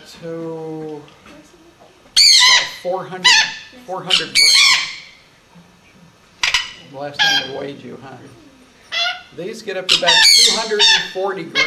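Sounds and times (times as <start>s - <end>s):
speech: 0.2s - 1.3s, 2.8s - 4.9s, 7.0s - 8.4s, 9.3s - 11.6s
female Patagonian conure squawking: 2.2s - 5.3s, 6.4s - 7.7s, 8.5s - 11.6s.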